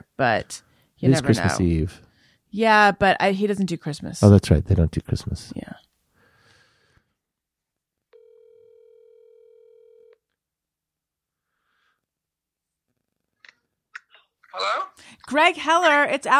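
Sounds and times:
speech: 0.2 - 5.8, 15.3 - 16.3
telephone line tone: 8.2 - 10.2.

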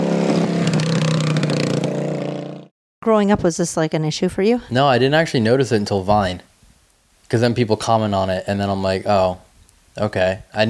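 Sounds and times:
motorcycle engine revving: 0.0 - 2.7
speech: 3.1 - 6.5, 7.3 - 9.4, 10.0 - 10.6.

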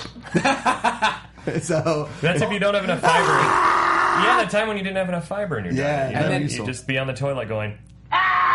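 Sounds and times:
speech: 0.3 - 7.9
man screaming while being chopped in film: 3.0 - 4.5, 8.1 - 8.5.

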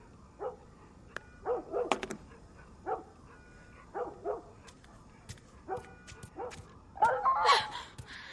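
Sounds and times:
dog barking at a moderate distance: 0.4 - 0.6, 1.4 - 2.1, 2.8 - 3.2, 3.8 - 4.7, 5.6 - 7.4.

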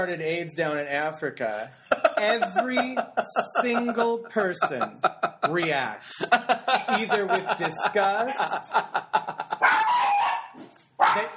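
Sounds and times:
speech: 0.0 - 9.6
laughter: 1.5 - 10.1
dog yipping: 9.6 - 11.3.

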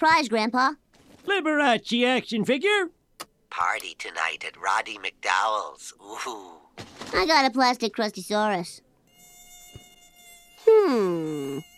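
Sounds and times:
speech: 0.0 - 8.8, 10.7 - 11.7
mosquito buzzing whine: 9.0 - 11.7.

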